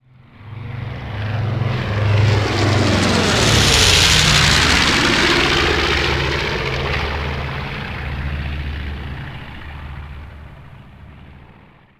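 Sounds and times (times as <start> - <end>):
fly-by whoosh: 1.0 - 10.1.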